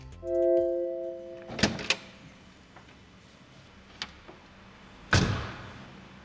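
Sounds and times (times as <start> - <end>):
sports car electronic tone: 0.2 - 1.7.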